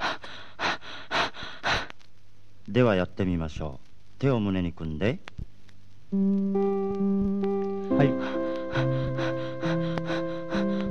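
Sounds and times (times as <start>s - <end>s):
rapid heavy panting as a short-breath breathing exercise: 0.0s - 1.9s, 8.1s - 10.8s
speech: 2.7s - 5.4s, 6.1s - 9.2s.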